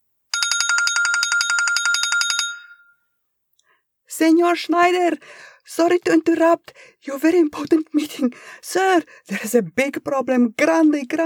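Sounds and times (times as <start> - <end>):
cell phone ringing with a trilling electronic bell: 0.3 - 3.1
speech: 4.1 - 11.2.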